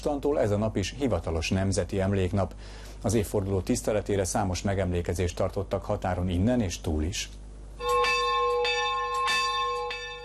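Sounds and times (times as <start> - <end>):
speech: 0.0 - 7.4
church bells ringing in a steady peal: 7.8 - 10.2.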